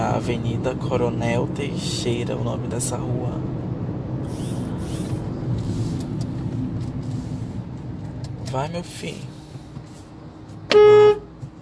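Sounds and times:
faint road noise: 0:00.0 - 0:11.6
speech: 0:00.2 - 0:03.6, 0:08.5 - 0:09.3, 0:10.7 - 0:11.0
short loud car horn honk to make another driver move on: 0:10.7 - 0:11.3.

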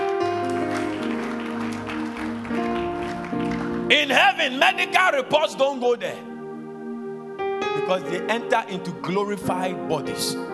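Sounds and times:
crowd applauding: 0:00.0 - 0:04.8
organ-like keyboard chords: 0:00.0 - 0:10.5
speech: 0:03.9 - 0:06.3, 0:07.9 - 0:10.5.

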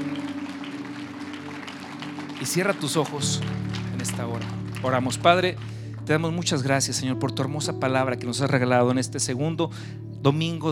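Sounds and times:
audience applause: 0:00.0 - 0:06.5
speech: 0:02.4 - 0:10.6.

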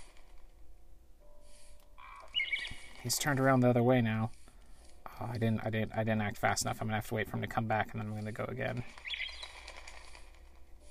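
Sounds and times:
video game bird chirps: 0:02.0 - 0:03.2, 0:08.9 - 0:09.6
speech: 0:03.0 - 0:04.4, 0:05.2 - 0:09.0.

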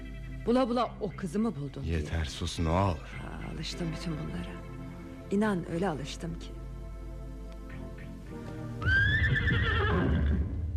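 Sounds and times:
speech: 0:00.4 - 0:04.7, 0:05.3 - 0:06.6
horse whinnying in thick fog: 0:08.8 - 0:10.7.

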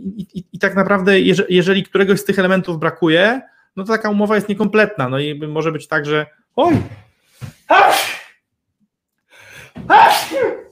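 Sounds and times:
speech: 0:00.1 - 0:08.1
loud sneezes: 0:07.7 - 0:08.4, 0:09.8 - 0:10.7.

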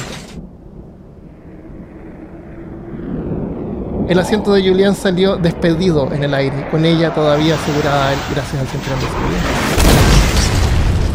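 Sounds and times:
airplane falling and breaking apart with engine on fire, deep roaring rumble: 0:00.3 - 0:10.0
speech: 0:04.1 - 0:09.7.

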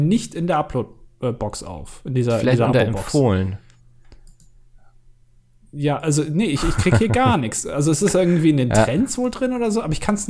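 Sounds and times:
speech: 0:00.0 - 0:03.6, 0:05.7 - 0:10.2
steady low electrical hum: 0:00.0 - 0:10.2
computer mouse clicks: 0:03.7 - 0:04.6
laughter: 0:06.6 - 0:08.9.

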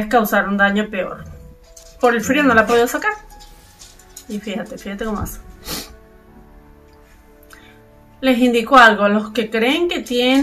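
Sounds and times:
speech: 0:00.0 - 0:01.3, 0:02.0 - 0:03.3, 0:04.3 - 0:05.5, 0:08.2 - 0:10.4
dog snorting, reverse sneezing: 0:00.7 - 0:04.3.

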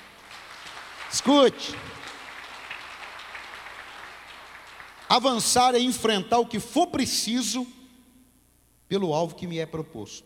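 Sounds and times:
crowd clapping during a sermon: 0:00.0 - 0:06.0
speech: 0:01.1 - 0:02.0, 0:05.2 - 0:07.8, 0:08.9 - 0:10.2.

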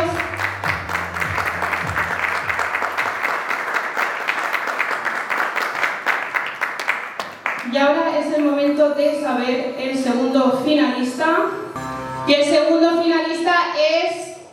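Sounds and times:
large audience applauding: 0:00.0 - 0:07.6
speech: 0:08.8 - 0:11.6, 0:12.3 - 0:14.2.

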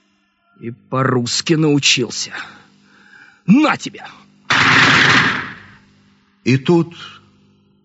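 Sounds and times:
speech: 0:00.6 - 0:02.6, 0:03.5 - 0:05.3, 0:06.4 - 0:07.2
single loud gunshot with rough roaring echo: 0:04.5 - 0:05.8.

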